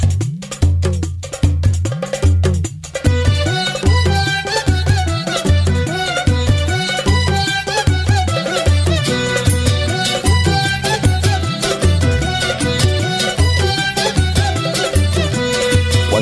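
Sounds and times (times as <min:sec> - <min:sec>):
upbeat full-band frevo-style song with vocals: 0:00.0 - 0:16.2
dense brass and strings: 0:03.1 - 0:16.2.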